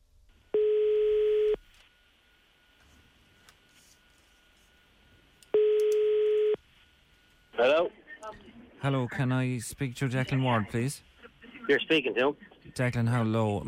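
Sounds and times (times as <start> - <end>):
phone call ringing tone: 0.5 - 1.6, 5.5 - 6.6
speech: 8.8 - 11.1, 11.7 - 13.6.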